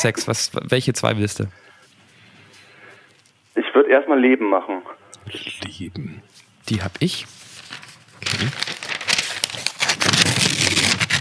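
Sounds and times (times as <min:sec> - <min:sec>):
speech: 0:00.0 - 0:01.7, 0:03.7 - 0:08.9
paper envelope being torn open: 0:07.6 - 0:11.1.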